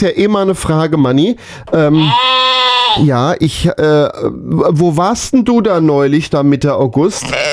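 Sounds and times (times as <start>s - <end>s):
speech: 0.0s - 7.5s
sheep bleating: 1.7s - 3.3s, 7.1s - 7.5s.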